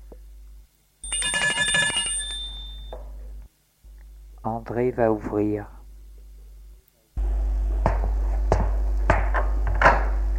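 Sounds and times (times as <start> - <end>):
steady low hum: 0.0 - 10.3
doorbell ringing: 1.0 - 3.0
speech: 4.4 - 5.8.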